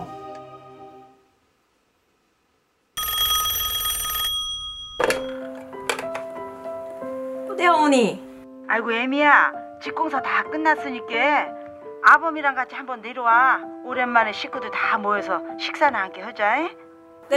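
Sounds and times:
telephone ringing: 0:03.0 - 0:05.8
telephone receiver being picked up: 0:04.9 - 0:06.3
speech: 0:07.6 - 0:17.3.

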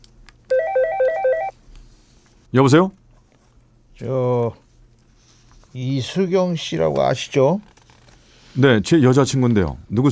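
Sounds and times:
phone ringtone for an incoming call: 0:00.5 - 0:01.5
speech: 0:02.5 - 0:03.0, 0:04.0 - 0:04.6, 0:05.8 - 0:07.7, 0:08.6 - 0:10.1.

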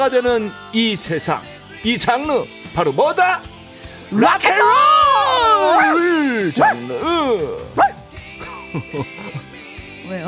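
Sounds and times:
speech: 0:00.0 - 0:03.5, 0:04.1 - 0:07.9, 0:08.7 - 0:09.5, 0:10.1 - 0:10.2
person imitating dog barking: 0:05.3 - 0:08.1
laughter: 0:08.4 - 0:09.5.

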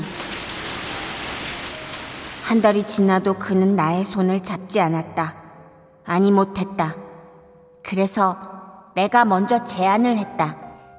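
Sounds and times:
rain shower with drops pattering on a surface: 0:00.0 - 0:03.8
speech: 0:02.5 - 0:05.4, 0:06.1 - 0:07.0, 0:07.8 - 0:10.6.

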